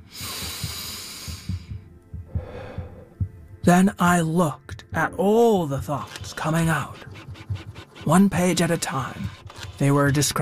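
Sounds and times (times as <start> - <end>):
deep breath: 0.0 - 3.3
steady throbbing low beat: 0.0 - 9.4
speech: 3.6 - 7.1, 8.0 - 10.4.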